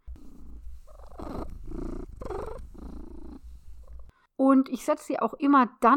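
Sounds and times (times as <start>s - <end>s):
cat purring while held in someone's arms at an open roof window: 0.0s - 4.1s
speech: 4.5s - 5.9s.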